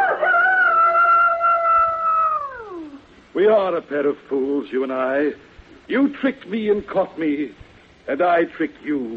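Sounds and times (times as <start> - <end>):
rooster crowing: 0.0 - 3.0
speech: 3.4 - 9.1.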